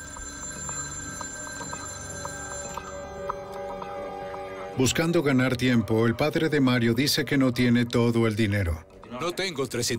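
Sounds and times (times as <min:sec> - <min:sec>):
electronic telephone ring: 0:00.0 - 0:03.5
speech: 0:04.8 - 0:09.9.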